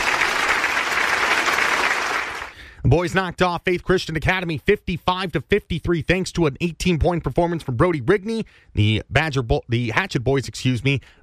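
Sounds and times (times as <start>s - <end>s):
audience applause: 0.0s - 2.6s
speech: 2.9s - 11.2s.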